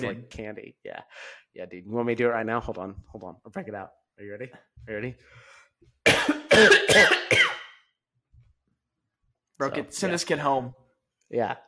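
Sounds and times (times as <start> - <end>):
speech: 0.0 - 7.5, 9.6 - 11.6
person faking harsh raspy coughs: 6.1 - 7.8.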